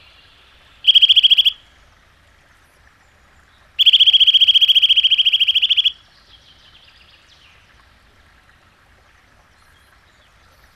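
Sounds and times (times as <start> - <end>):
Eurasian nuthatch trilling: 0.8 - 1.6, 3.8 - 6.0.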